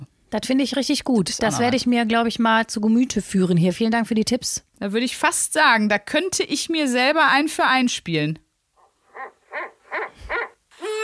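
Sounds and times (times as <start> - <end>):
speech: 0.3 - 8.4
eagle owl hooting: 9.1 - 11.0.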